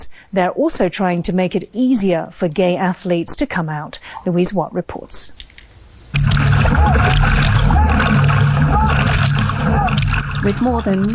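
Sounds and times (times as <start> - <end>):
speech: 0.3 - 5.4, 6.1 - 7.8, 10.4 - 11.1
low droning hum: 6.1 - 11.1
dragon boat paddles splashing river water: 6.2 - 11.1
indistinct voices calling out: 6.6 - 11.1.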